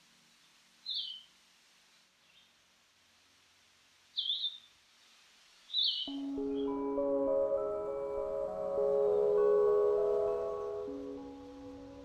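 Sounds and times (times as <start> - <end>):
Blue-headed Vireo slurred song phrases: 6.1 - 12.0
sustained music: 6.1 - 12.0.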